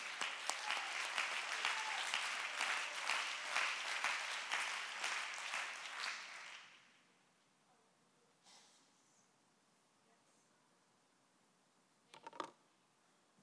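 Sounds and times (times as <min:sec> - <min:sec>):
audience clapping hands to give God praise: 0:00.0 - 0:07.0.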